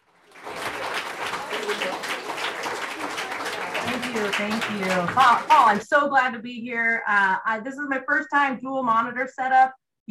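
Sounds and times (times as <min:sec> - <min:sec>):
crowd applause sound effect during a live broadcast: 0:00.0 - 0:05.8
speech: 0:04.1 - 0:10.0.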